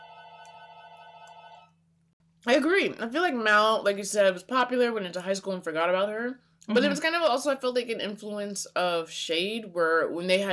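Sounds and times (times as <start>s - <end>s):
cell phone ringing with a buzzy electronic tone: 0.0s - 1.8s
speech: 2.4s - 10.5s.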